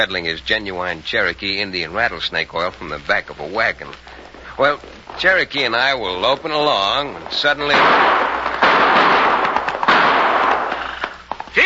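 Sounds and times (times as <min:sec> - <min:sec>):
speech: 0:00.0 - 0:08.6
rapid volley of gunshots fired at a widow's place: 0:07.4 - 0:11.0.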